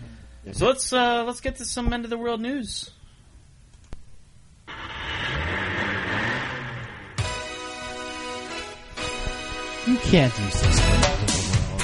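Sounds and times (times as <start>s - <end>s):
speech: 0.4s - 3.0s, 9.9s - 11.5s
road noise: 4.7s - 8.2s
car engine rumbling and revving while driving: 4.7s - 8.4s.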